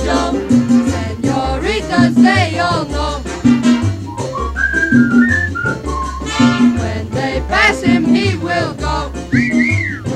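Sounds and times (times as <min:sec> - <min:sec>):
musical accompaniment with a low bass line: 0:00.0 - 0:10.1
person whistling a melody: 0:04.0 - 0:06.3, 0:09.3 - 0:10.1.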